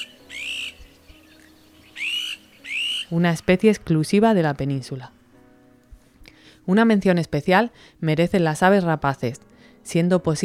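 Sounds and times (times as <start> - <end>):
flock of Iberian azure-winged magpies calling: 0.0 - 0.9, 1.8 - 3.2
speech: 3.1 - 5.2, 6.7 - 10.4.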